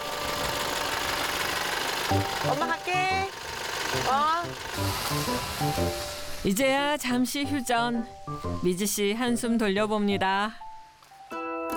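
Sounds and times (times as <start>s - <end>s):
school bus diesel engine idling: 0.0s - 6.7s
speech: 2.1s - 10.6s.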